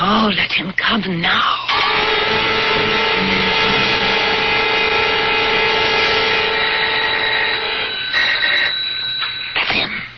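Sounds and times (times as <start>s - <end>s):
speech: 0.2s - 1.6s, 2.3s - 3.9s
electric doorbell ringing: 1.8s - 9.7s.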